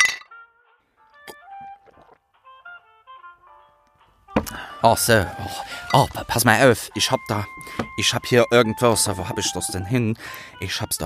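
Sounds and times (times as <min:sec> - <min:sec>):
glasses of butterbeer and elderflower tea clinking in a toast: 0:00.0 - 0:00.3, 0:09.0 - 0:10.0
speech: 0:04.8 - 0:11.0.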